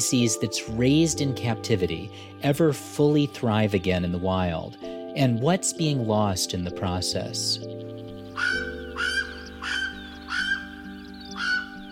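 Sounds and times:
speech: 0.1 - 8.6
Hawaiian crow calling: 7.6 - 11.8.

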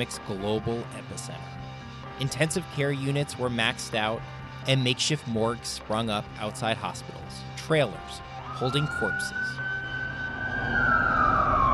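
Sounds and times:
speech: 0.0 - 1.6, 2.2 - 9.6, 10.6 - 11.1
emergency vehicle siren in New York City during the COVID pandemic: 8.0 - 11.7.

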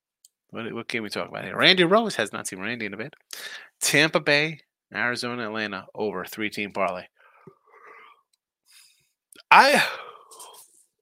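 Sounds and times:
speech: 0.5 - 7.2, 9.5 - 10.0
person yawning: 9.5 - 10.6.

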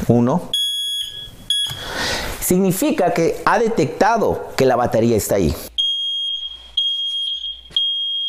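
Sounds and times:
speech: 0.1 - 0.6, 2.5 - 5.7
smoke detector alarm beeping during button test: 0.5 - 2.2, 5.8 - 8.2.

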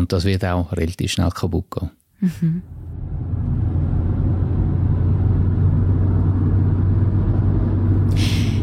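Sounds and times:
speech: 0.0 - 2.8
old car engine rumbling while driven from Warsaw toward Kyiv: 2.6 - 8.6.

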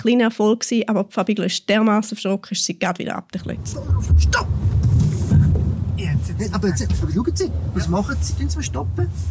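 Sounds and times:
speech: 0.0 - 4.9, 6.2 - 9.2
car braking hard with anti-lock braking system engaging: 3.6 - 9.2.

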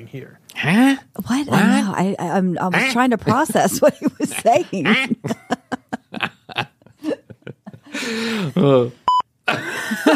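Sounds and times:
speech: 0.0 - 5.4, 8.1 - 9.0
person grunting: 0.6 - 1.9
person laughing: 3.2 - 8.9, 9.5 - 10.1
electronic smoke alarm beep: 9.1 - 9.3.

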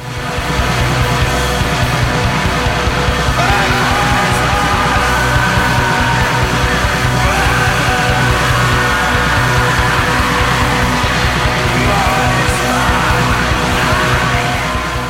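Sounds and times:
dense loud wall of distorted music: 0.0 - 15.0
shouted vocal smeared by cavernous reverb: 3.3 - 15.0.

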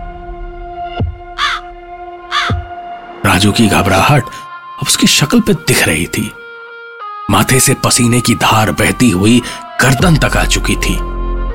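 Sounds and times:
crow cawing while flying alongside a moving bus: 1.3 - 1.7, 2.3 - 2.8
deep thump: 2.5 - 2.8
speech: 3.4 - 6.4, 7.3 - 11.1.

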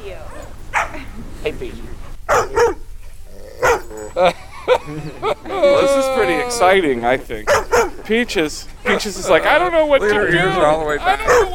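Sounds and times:
dog barking: 0.3 - 1.0, 2.0 - 2.9, 3.6 - 4.1, 7.4 - 8.1, 11.1 - 11.5
speech: 1.4 - 2.7, 4.2 - 5.3, 6.5 - 11.5
laughter: 3.7 - 7.3, 8.0 - 11.5.

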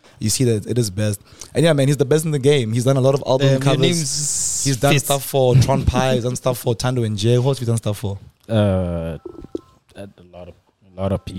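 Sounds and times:
speech: 0.2 - 11.3
electronic phone tone: 9.2 - 9.8.

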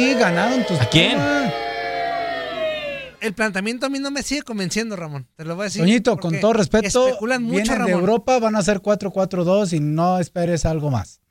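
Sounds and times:
speech: 0.0 - 1.6, 3.2 - 11.2
crowd booing and jeering: 0.0 - 3.3.

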